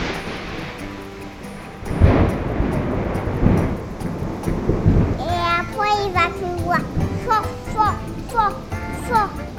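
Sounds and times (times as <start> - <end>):
loud rumble of thunder from a violent tropical storm in Champasak, southern Laos: 0.0 - 7.3
steady tropical storm wash: 0.0 - 9.5
children's voices chattering: 4.9 - 9.5.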